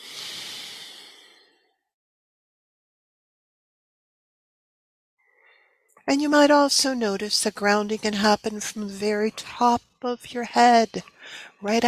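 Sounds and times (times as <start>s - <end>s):
slow breathing in and out: 0.0s - 1.8s, 5.2s - 5.9s, 11.0s - 11.6s
speech: 6.0s - 11.8s.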